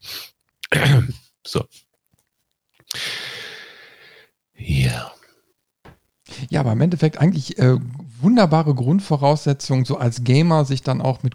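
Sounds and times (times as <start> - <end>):
rough, throaty cough close to the microphone: 0.6 - 1.2
speech: 1.1 - 1.8, 6.5 - 11.3
short breathy inhale: 2.9 - 4.3.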